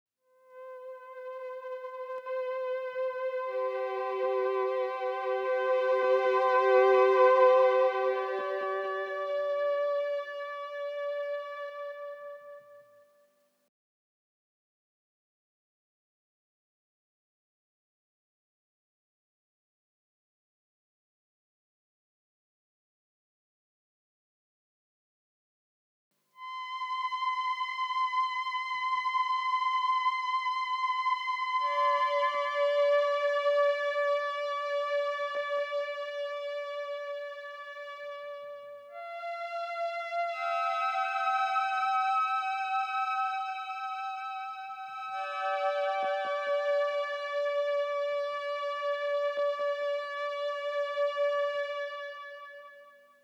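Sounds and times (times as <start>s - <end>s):
strings: 0.4s - 12.8s, 26.4s - 53.0s.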